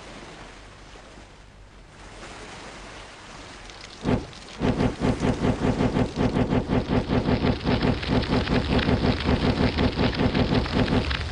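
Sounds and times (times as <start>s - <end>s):
sea waves washing against a ship at sea: 0.0s - 11.2s.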